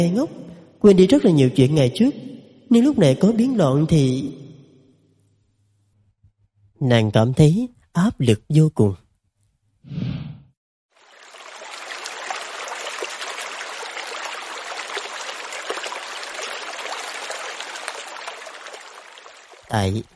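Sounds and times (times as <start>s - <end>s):
speech: 0.0s - 4.4s, 6.8s - 9.0s, 19.7s - 20.1s
water pouring from a height into a lake: 10.9s - 20.1s.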